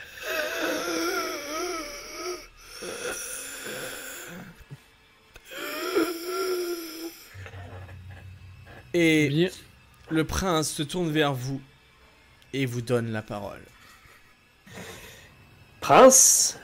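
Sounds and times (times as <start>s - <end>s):
voice imitating raspy wheezing asthmatic breathing: 0.0s - 4.8s, 5.4s - 8.9s, 14.0s - 15.4s
speech: 9.0s - 11.7s, 12.5s - 13.8s, 15.9s - 16.6s.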